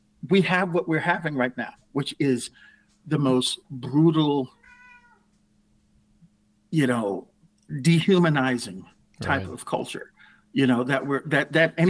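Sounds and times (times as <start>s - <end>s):
quiet room hum: 0.0s - 11.8s
speech: 0.3s - 4.6s, 6.7s - 11.8s
cat meowing: 4.5s - 5.3s.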